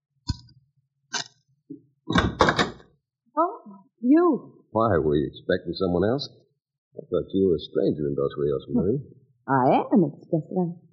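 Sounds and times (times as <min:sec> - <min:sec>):
wooden hotel room door rattling: 0:02.1 - 0:02.8
speech: 0:04.0 - 0:06.4, 0:07.0 - 0:10.8.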